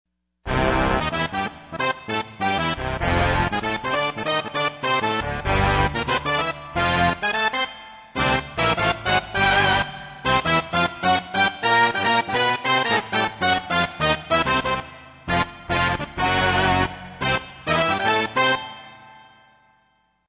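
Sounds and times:
Yamaha TG55 factory preset big band: 0:00.5 - 0:19.3.

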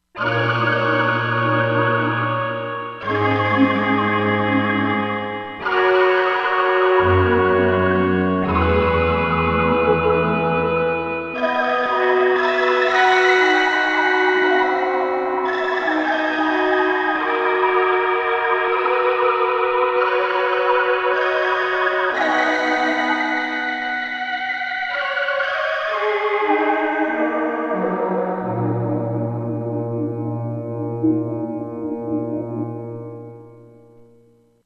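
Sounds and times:
weird synthesized choir on Korg MSC-16S: 0:00.2 - 0:33.4.

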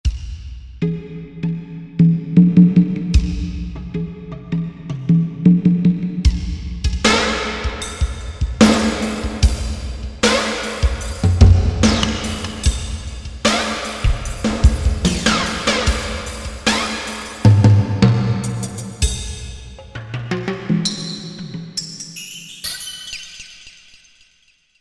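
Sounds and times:
flanged drums from a Korg MSC-8S percussion module: 0:02.1 - 0:21.8.

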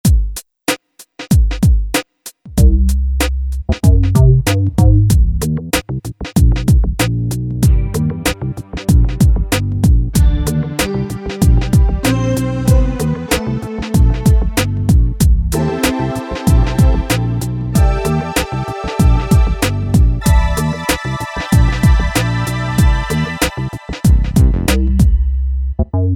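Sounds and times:
RnB split groove on a Generalmusic Equinox keyboard: 0:01.0 - 0:25.4.

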